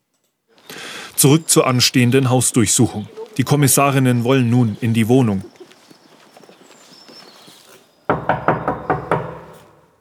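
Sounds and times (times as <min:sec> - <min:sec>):
speech: 0:01.2 - 0:05.6
police investigators knocking on an apartment door: 0:08.1 - 0:09.6.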